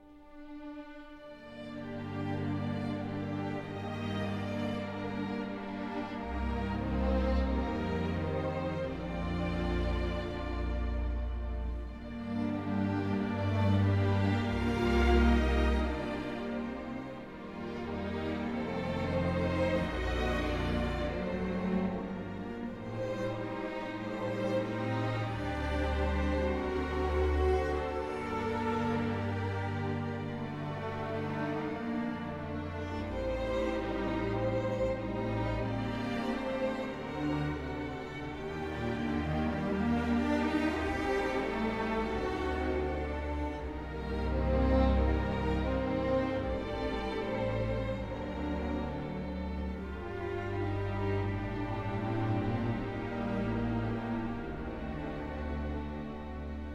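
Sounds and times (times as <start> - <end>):
strings: 0.0 - 56.7.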